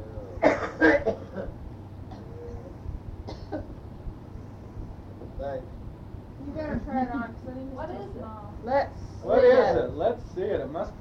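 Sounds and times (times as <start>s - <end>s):
low steady hum: 0.0s - 10.9s
man coughing: 0.3s - 1.5s, 3.3s - 3.7s.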